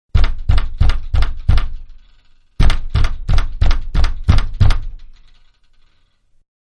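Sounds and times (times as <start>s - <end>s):
pounding on a wooden door from inside: 0.1s - 2.0s, 2.6s - 5.2s.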